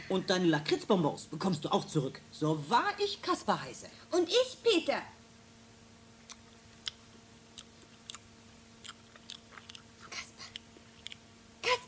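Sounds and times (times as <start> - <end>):
low steady hum: 0.0 - 11.8
speech: 0.1 - 5.2
wet smacking chewing of a giant: 6.2 - 11.3.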